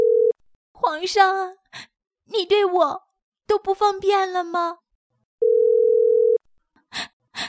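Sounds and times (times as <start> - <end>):
loud steady electronic phone tone: 0.0 - 0.4, 5.4 - 6.4
speech: 0.9 - 4.8.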